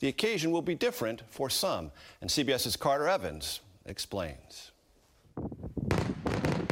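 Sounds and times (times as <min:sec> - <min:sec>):
speech: 0:00.0 - 0:04.7, 0:05.4 - 0:06.0
fireworks exploding: 0:05.8 - 0:06.7.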